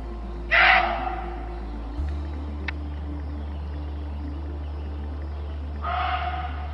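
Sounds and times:
low steady rumble: 0.0s - 6.7s
muntjac deer giving harsh screaming barks: 0.5s - 1.2s, 5.8s - 6.7s.

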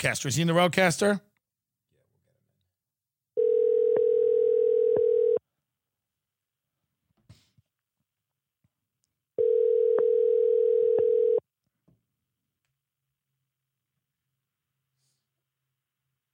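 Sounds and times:
speech: 0.0s - 1.3s
phone ringback tone with long steady electronic rings: 3.4s - 5.4s, 9.4s - 11.4s.

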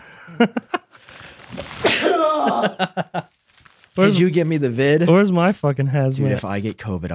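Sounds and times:
speech: 0.3s - 0.8s, 2.6s - 3.3s, 4.0s - 7.1s
breathy intakes: 0.9s - 2.6s
loud sneeze: 1.6s - 2.6s.

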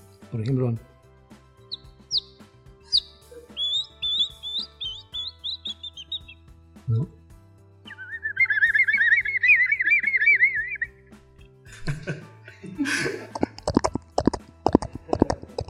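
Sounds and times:
speech: 0.3s - 0.9s
person whistling bird-like chirps, warbles and trills: 1.7s - 6.4s, 7.9s - 11.0s
laughter: 11.7s - 13.6s, 14.9s - 15.6s.

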